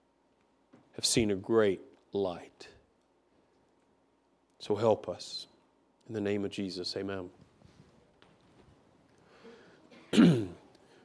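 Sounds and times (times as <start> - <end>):
speech: 1.0 - 2.8, 4.6 - 5.5, 6.1 - 7.4
throat clearing: 9.9 - 10.7.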